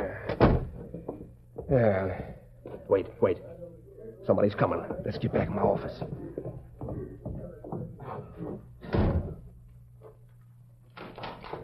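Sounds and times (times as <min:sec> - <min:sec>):
speech: 0:01.7 - 0:02.3, 0:02.9 - 0:03.5, 0:04.2 - 0:06.2
door swinging shut with a solid thump: 0:08.8 - 0:09.4.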